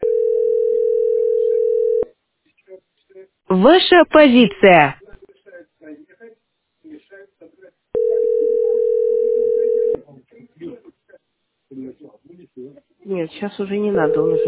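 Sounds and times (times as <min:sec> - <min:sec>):
loud steady electronic telephone tone: 0:00.0 - 0:02.1, 0:08.0 - 0:10.0, 0:13.9 - 0:14.4
people chatting: 0:02.6 - 0:08.8, 0:09.9 - 0:14.4
speech: 0:03.5 - 0:05.0, 0:13.2 - 0:14.4.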